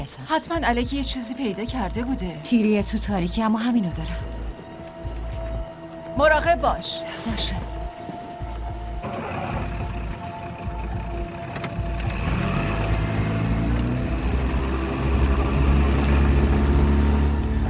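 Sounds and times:
speech: 0.1 - 4.4, 6.2 - 7.8
motorboat engine droning on the water: 4.2 - 17.6.

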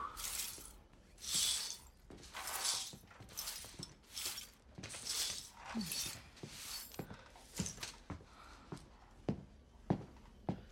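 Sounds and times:
rustling and shuffling movement: 0.2 - 8.3
footsteps of someone pacing back and forth: 0.2 - 10.6.

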